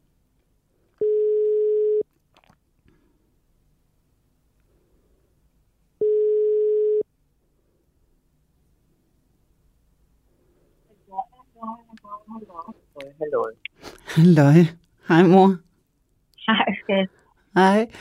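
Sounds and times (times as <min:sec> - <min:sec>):
telephone ringing tones while placing a call in an office: 0:01.0 - 0:02.0, 0:06.0 - 0:07.0
speech: 0:12.6 - 0:15.6, 0:16.5 - 0:17.9.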